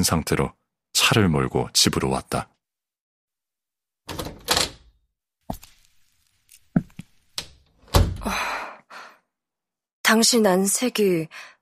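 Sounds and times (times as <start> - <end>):
speech: 0.0 - 2.5, 10.1 - 11.5
front door opening with thumps, latch clicks and rattling: 4.1 - 4.9, 7.4 - 8.3.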